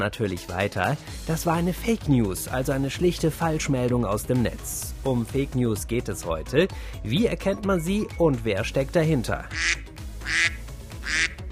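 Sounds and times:
speech: 0.0s - 11.3s
duck quacking: 9.5s - 11.5s.

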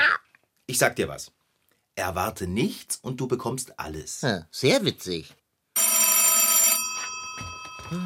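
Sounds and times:
speech: 0.7s - 1.4s, 2.0s - 5.4s, 7.4s - 8.0s
loud telephone bell ringing: 5.8s - 8.0s.

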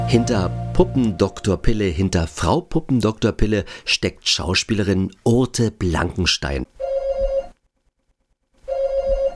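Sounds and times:
speech: 0.1s - 6.8s
front door doorbell buzzing: 6.8s - 7.5s, 8.7s - 9.3s.

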